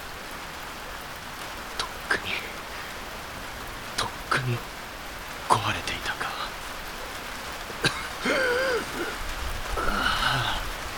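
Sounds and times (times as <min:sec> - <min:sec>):
steady rain pattering on surfaces: 0:00.0 - 0:10.9
speech: 0:04.4 - 0:04.8, 0:05.6 - 0:06.4
low strained vocal groans: 0:08.2 - 0:09.2, 0:09.8 - 0:10.7.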